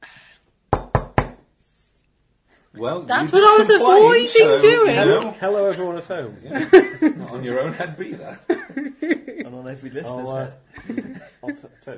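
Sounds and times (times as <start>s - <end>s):
faint noise: 0.0s - 11.9s
firm resonant knocks on a motel door: 0.7s - 1.5s
speech: 2.8s - 11.9s
laughter: 4.1s - 10.1s, 10.8s - 11.7s.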